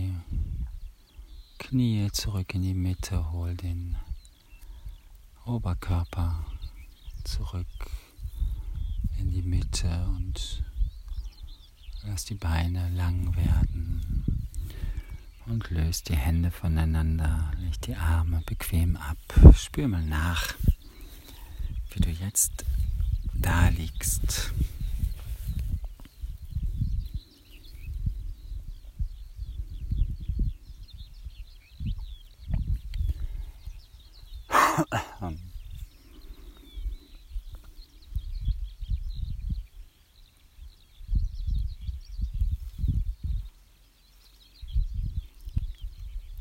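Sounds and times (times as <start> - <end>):
birds chirping and trilling outdoors: 0.0 - 46.3
speech: 1.6 - 4.1, 5.5 - 6.5, 7.2 - 8.0, 9.2 - 10.6, 12.0 - 14.8, 15.5 - 20.7, 21.9 - 22.8, 23.4 - 24.8.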